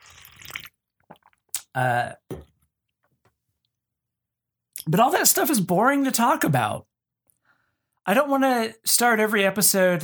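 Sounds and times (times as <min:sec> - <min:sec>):
person slurping hot coffee: 0:00.0 - 0:01.7
speech: 0:01.8 - 0:02.3, 0:04.9 - 0:06.9, 0:08.0 - 0:10.0.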